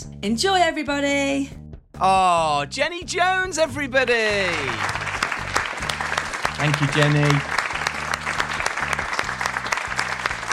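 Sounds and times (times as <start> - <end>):
speech: 0.2 - 5.0, 6.6 - 7.6
crowd applause: 4.2 - 10.5
sharp claps: 4.3 - 10.5.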